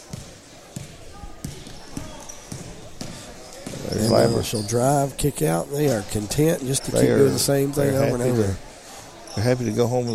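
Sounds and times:
gym noise: 0.0 - 10.1
basketball dribbled on the court during a women's basketball game: 0.1 - 3.9
speech: 3.9 - 8.7, 9.4 - 10.1.

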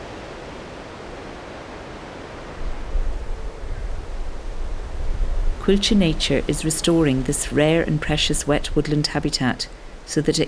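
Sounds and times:
wind blowing through birch, alder, oak and ash trees: 0.0 - 10.4
speech: 5.7 - 10.4.

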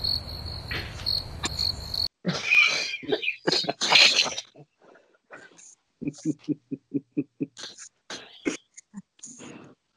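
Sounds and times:
cricket chirping: 0.0 - 2.1
speech: 2.2 - 2.5, 6.2 - 6.9
laughter: 2.3 - 4.6, 6.0 - 7.9.

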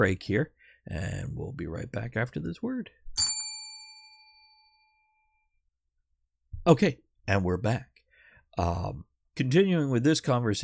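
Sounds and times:
speech: 0.0 - 3.3, 6.6 - 7.9, 8.5 - 10.6
bright metallic bell ding: 3.2 - 5.2.

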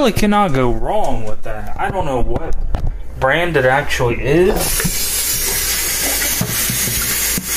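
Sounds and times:
speech: 0.0 - 5.1
water rushing into a blender jar while rinsing: 4.6 - 7.5.

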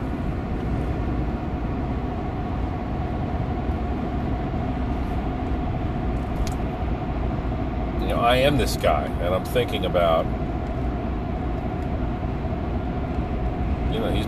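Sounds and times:
heavy truck cruising at speed on highway: 0.0 - 14.2
speech: 8.3 - 10.4, 14.0 - 14.2.

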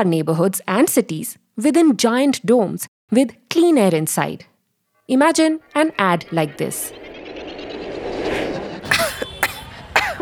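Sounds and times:
speech: 0.0 - 4.5, 5.1 - 7.0
man coughing: 8.9 - 10.2.

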